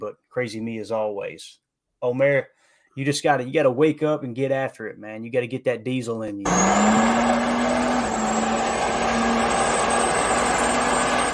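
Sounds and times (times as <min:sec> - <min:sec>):
speech: 0:00.0 - 0:09.2
pickup truck engine driving past: 0:06.5 - 0:11.3.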